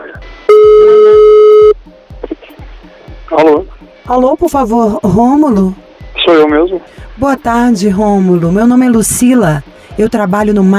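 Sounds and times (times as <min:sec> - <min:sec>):
electronic telephone line tone as a call is placed: 0:00.5 - 0:01.8
speech: 0:03.4 - 0:10.7.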